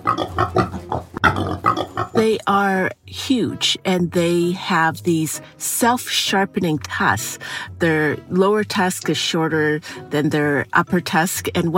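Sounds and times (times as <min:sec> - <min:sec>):
hybrid pigs roaming wild in Canada's prairie provinces grunting and snorting: 0:00.0 - 0:02.2
speech: 0:02.2 - 0:11.7.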